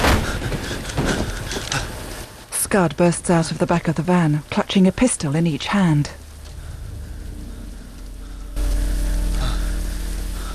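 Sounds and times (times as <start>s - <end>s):
heavy rain pouring down: 0.0s - 10.5s
speech: 2.7s - 6.2s
low rumble: 3.5s - 10.5s.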